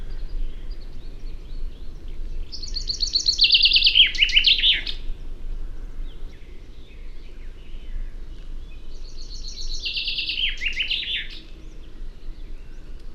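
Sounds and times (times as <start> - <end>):
common chaffinch singing: 0.0 - 5.4, 6.0 - 13.1.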